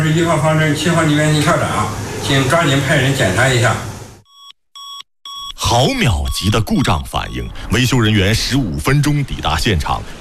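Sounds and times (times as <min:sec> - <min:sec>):
speech: 0:00.0 - 0:03.9, 0:05.7 - 0:10.1
electronic alarm beeps from a remote control centre big screen: 0:04.2 - 0:07.8.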